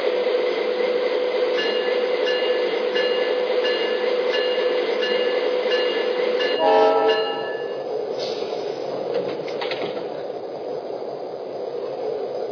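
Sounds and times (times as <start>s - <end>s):
passenger train rumbling and clanking on rails departing station: 0.0s - 12.4s
passenger train horn blast: 6.6s - 7.7s.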